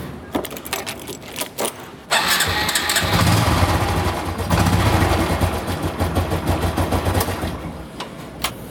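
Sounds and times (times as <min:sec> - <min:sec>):
Honda Revo 110 motorbike engine cranked and starting: 0:02.1 - 0:07.6.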